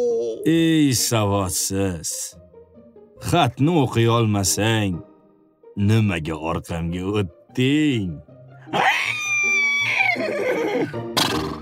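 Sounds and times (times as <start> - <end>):
speech: 0.0 - 2.4, 3.2 - 5.1, 5.8 - 11.2
horse neighing: 8.7 - 10.9.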